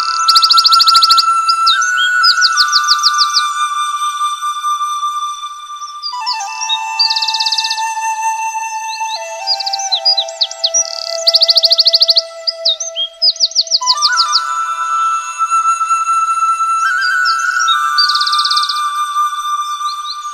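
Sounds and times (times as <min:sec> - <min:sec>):
birds singing quick high slurred chirps and rapid buzzy trills: 0:00.0 - 0:20.3.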